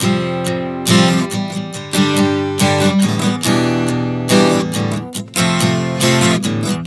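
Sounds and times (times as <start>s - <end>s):
acoustic guitar chord progression: 0.0s - 6.8s.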